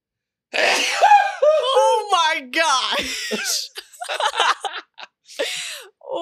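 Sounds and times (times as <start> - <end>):
loud explosive sneeze: 0.6 - 1.3
speech: 2.4 - 4.8
laughter: 3.0 - 5.8.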